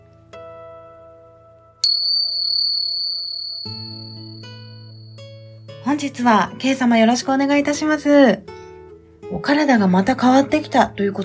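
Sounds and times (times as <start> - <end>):
gentle relaxing bell chimes: 1.8 - 5.6
speech: 5.9 - 8.5, 9.4 - 11.2.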